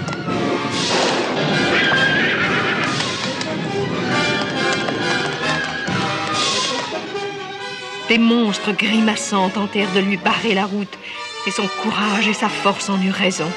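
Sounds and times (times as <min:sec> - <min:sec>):
horse galloping through dark castle corridors: 0:00.0 - 0:09.2
speech: 0:08.1 - 0:13.5.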